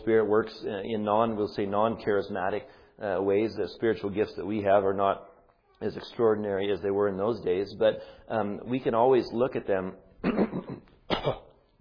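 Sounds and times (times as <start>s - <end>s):
speech: 0.0s - 10.4s
person coughing before a sermon: 10.2s - 11.6s
person clearing throat before a sermon: 10.2s - 11.7s.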